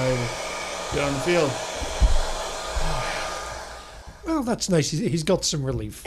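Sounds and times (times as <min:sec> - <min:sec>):
speech: 0:00.0 - 0:01.7, 0:04.2 - 0:06.0
hair dryer blowing: 0:00.0 - 0:04.7.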